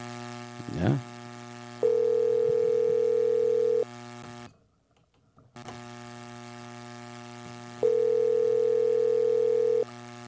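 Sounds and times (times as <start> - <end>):
faint hum: 0.0 - 4.6, 5.6 - 10.2
ringback tone of an outgoing phone call going unanswered: 1.8 - 3.9, 7.8 - 9.9.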